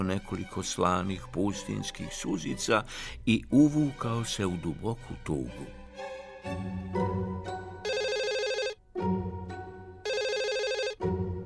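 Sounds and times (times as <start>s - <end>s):
speech: 0.0s - 7.5s
telephone ringing with melodic phrase and trilling burst: 7.8s - 8.8s, 10.0s - 11.0s.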